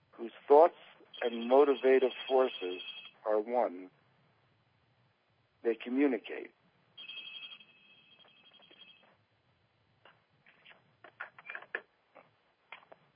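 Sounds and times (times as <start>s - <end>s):
speech: 0.2s - 4.0s, 5.6s - 6.6s
telephone ringing with a high electronic trill: 1.1s - 3.2s, 7.0s - 9.2s.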